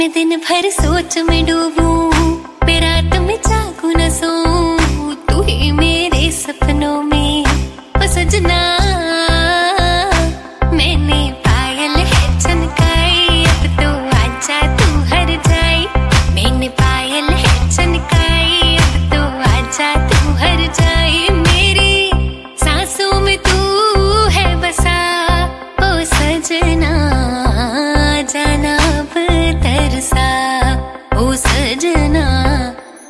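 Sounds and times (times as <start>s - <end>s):
woman singing ringtone: 0.0s - 33.0s.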